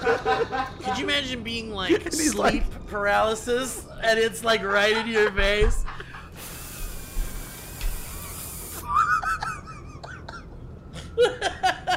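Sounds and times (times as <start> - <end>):
choppy bursts of laughter and giggling: 0.0 - 1.1, 4.5 - 6.4, 8.8 - 11.9
speech: 0.0 - 5.9
voice imitating hissing water spray: 6.4 - 8.9.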